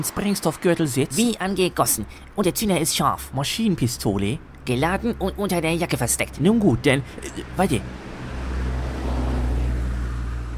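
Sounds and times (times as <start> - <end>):
speech: 0.0 - 8.0
Line 1 city bus diesel engine rumbling pulling up to a stop: 0.0 - 10.5.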